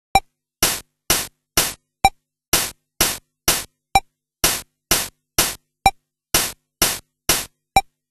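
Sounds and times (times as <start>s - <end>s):
CASIO VL-1 four-beat rhythm preset: 0.6s - 3.8s, 4.4s - 5.7s, 6.4s - 7.9s.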